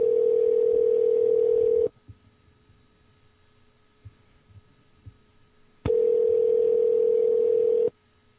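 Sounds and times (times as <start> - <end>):
telephone tone while calling: 0.0 - 1.9, 5.9 - 7.9.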